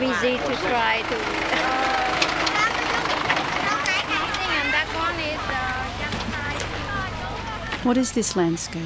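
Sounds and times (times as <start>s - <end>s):
garbage truck engine rumbling as it pulls up and idles: 0.0s - 8.8s
many voices calling and chattering: 0.0s - 8.8s
speech: 0.2s - 1.8s, 7.8s - 8.8s.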